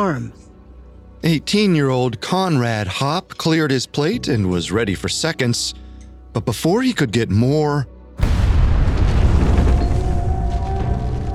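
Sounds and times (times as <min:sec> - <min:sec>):
speech: 0:00.0 - 0:00.5, 0:01.2 - 0:07.9
explosion outside a farmhouse on a Colorado farm: 0:08.2 - 0:11.3.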